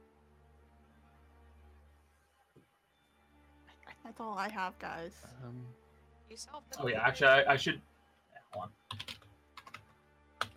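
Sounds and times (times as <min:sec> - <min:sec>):
speech: 0:04.0 - 0:07.9, 0:08.5 - 0:09.1
typing on a computer keyboard: 0:08.5 - 0:10.5.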